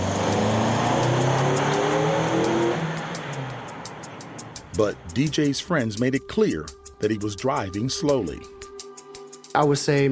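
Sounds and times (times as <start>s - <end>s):
car engine accelerating during police test: 0.0s - 5.3s
speech: 4.8s - 8.6s, 9.6s - 10.1s.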